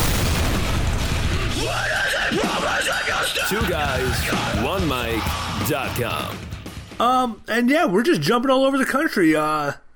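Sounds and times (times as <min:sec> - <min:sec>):
loud rumbling explosion effect: 0:00.0 - 0:02.8
speech: 0:02.3 - 0:09.9.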